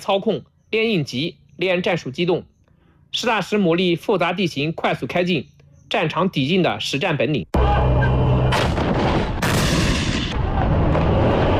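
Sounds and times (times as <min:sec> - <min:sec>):
speech: 0:00.0 - 0:02.5, 0:03.1 - 0:08.2
loud broadband artillery blasts: 0:07.6 - 0:11.5
heavy gunfire from a military live-fire exercise with armored vehicle crews: 0:08.5 - 0:11.5.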